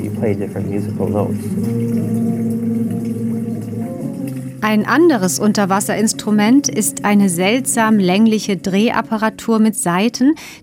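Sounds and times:
water-nozzle instrument tones played by finger-blocking the jets: 0.0 - 9.5
speech: 0.2 - 2.3, 4.6 - 10.6.

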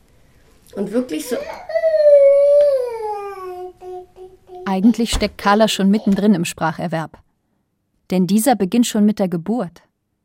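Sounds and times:
speech: 0.8 - 1.8, 4.7 - 7.2, 8.1 - 9.9
baby girl squealing with pitch sliding downward: 1.3 - 4.0.

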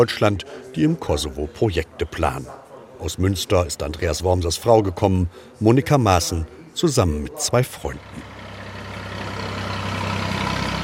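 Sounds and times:
speech: 0.0 - 8.4
old tractor engine drone beside a hotel: 8.0 - 10.8.

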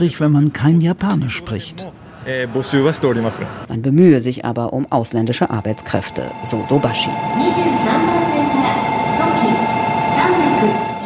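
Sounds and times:
speech: 0.0 - 8.8
train rumbling on rails heard inside a carriage: 5.2 - 11.0.

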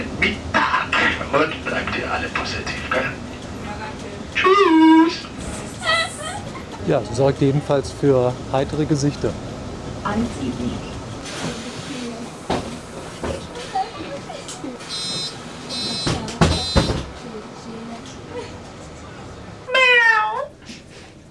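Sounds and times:
voices on a bus: 0.0 - 14.9, 15.8 - 19.7
bus rumbling: 0.0 - 21.2
speech: 1.3 - 3.1, 6.9 - 10.9
laughter: 5.7 - 6.9
cat meowing on a bus: 19.7 - 20.5.

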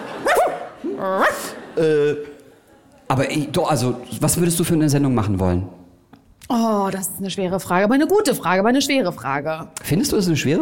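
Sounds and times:
dog barking in the audience: 0.2 - 1.6
speech: 1.0 - 2.3, 3.1 - 5.8, 6.5 - 10.6.

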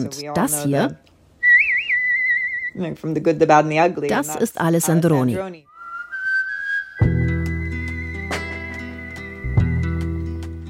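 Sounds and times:
speech: 0.0 - 1.1, 2.8 - 5.7
clear high whistled melody from a film score: 1.4 - 2.8, 5.7 - 10.6.

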